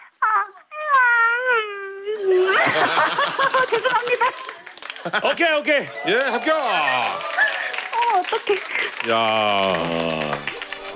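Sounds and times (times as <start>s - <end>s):
person imitating a baby puppy's whimper: 0.2s - 2.4s
laughter: 2.3s - 10.9s
speech: 2.8s - 7.5s, 8.1s - 10.9s.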